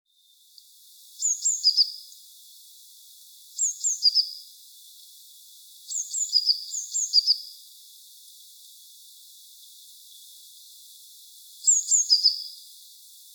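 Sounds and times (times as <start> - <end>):
light background hiss: 0.1 - 13.3
Eurasian blue tit Cyanistes caeruleus singing: 0.3 - 8.7, 9.6 - 13.3.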